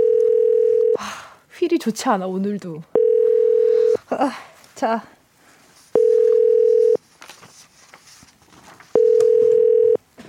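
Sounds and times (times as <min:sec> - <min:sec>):
telephone ringback tone, call not answered: 0:00.0 - 0:01.0, 0:02.9 - 0:04.0, 0:06.0 - 0:07.0, 0:09.0 - 0:10.0
faint noise: 0:00.0 - 0:10.2
speech: 0:01.7 - 0:03.0, 0:04.1 - 0:05.2.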